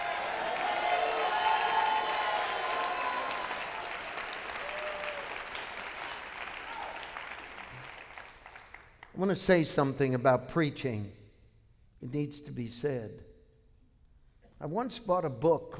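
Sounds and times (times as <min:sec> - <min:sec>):
audience applauding: 0:00.0 - 0:09.1
speech: 0:09.2 - 0:11.2, 0:12.0 - 0:13.3, 0:14.6 - 0:15.7.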